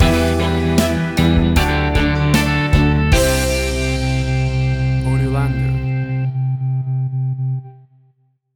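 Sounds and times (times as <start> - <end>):
short anthemic pop rock stinger: 0.0 - 6.5.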